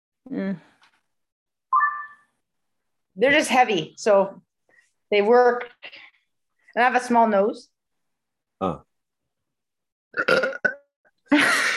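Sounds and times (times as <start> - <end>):
speech: 0.3 - 0.7, 3.2 - 4.4, 5.1 - 6.0, 6.8 - 7.7, 8.6 - 8.9, 10.2 - 10.7
loud drawn-out burp: 10.1 - 10.9.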